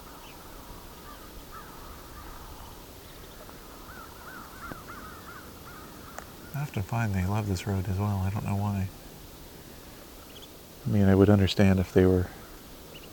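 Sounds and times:
soft constant outdoor hiss: 0:00.0 - 0:13.1
flock of crows cawing: 0:00.1 - 0:06.6, 0:12.3 - 0:12.7
speech: 0:06.6 - 0:09.0, 0:10.8 - 0:12.4.

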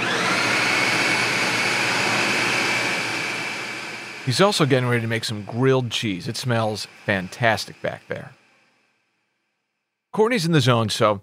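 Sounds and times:
kitchen blender mixing beans for white bean dip: 0:00.0 - 0:09.2
speech: 0:04.3 - 0:08.4, 0:10.1 - 0:11.2.

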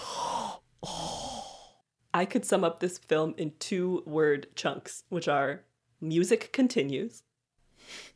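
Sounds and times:
person imitating heavy breathing: 0:00.0 - 0:01.8
speech: 0:02.2 - 0:08.1.

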